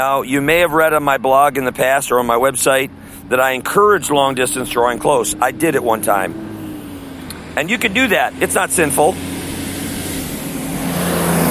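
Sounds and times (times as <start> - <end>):
speech: 0.0 - 6.5, 7.6 - 9.4
fire truck driving past in the street: 3.0 - 11.5.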